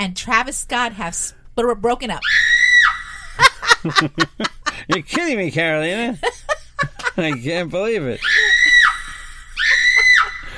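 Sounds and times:
speech: 0.0 - 2.5, 3.4 - 6.3, 7.2 - 8.4
laughter: 3.0 - 10.5
man screaming: 8.2 - 10.5.

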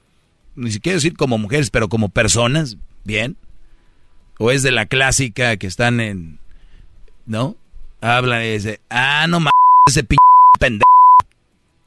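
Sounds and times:
speech: 0.6 - 3.5, 4.4 - 6.4, 7.2 - 10.9
censor bleep over profanity: 9.5 - 11.2.

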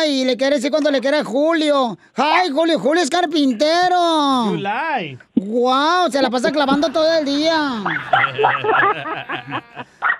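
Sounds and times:
speech: 0.0 - 10.1
laughter: 6.4 - 10.0
dog barking short and sharp: 7.8 - 9.0, 10.0 - 10.1.

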